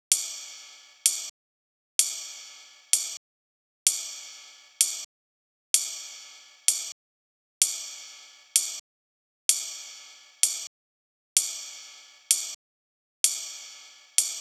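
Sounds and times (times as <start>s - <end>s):
ride cymbal in big room house style: 0.1s - 1.3s, 2.0s - 3.2s, 3.9s - 5.1s, 5.8s - 7.0s, 7.6s - 8.8s, 9.5s - 10.7s, 11.4s - 12.6s, 13.2s - 14.4s.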